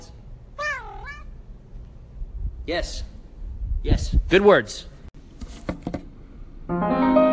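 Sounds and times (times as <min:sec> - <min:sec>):
male pet cat meowing: 0:00.6 - 0:01.4
speech: 0:02.7 - 0:03.1, 0:03.8 - 0:04.9, 0:06.7 - 0:07.2.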